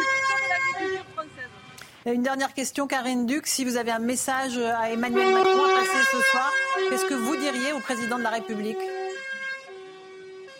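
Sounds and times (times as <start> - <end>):
car horn honking: 0.0 - 1.8, 4.9 - 10.5
speech: 2.0 - 9.0.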